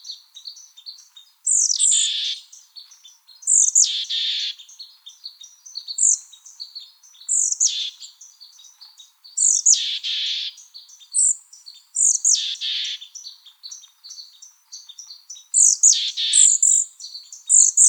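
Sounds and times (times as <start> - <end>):
Mexican Chickadee calls with high thin and harsh buzzy notes: 0.0 - 17.8.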